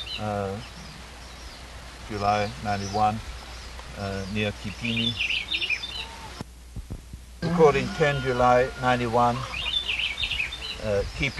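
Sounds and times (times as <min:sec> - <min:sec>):
faint bird chatter: 0:00.0 - 0:06.5, 0:07.8 - 0:11.3
outdoor wind hiss: 0:00.0 - 0:11.3
speech: 0:00.2 - 0:00.8, 0:02.1 - 0:03.4, 0:04.0 - 0:05.6, 0:07.6 - 0:09.6, 0:10.8 - 0:11.3
rooster crowing: 0:07.4 - 0:10.1.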